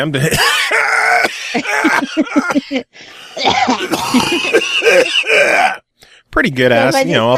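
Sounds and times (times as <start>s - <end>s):
speech: 0.0s - 0.5s, 1.5s - 7.3s
hacking coughing fit from a person with pneumonia: 0.2s - 2.7s, 3.4s - 5.8s.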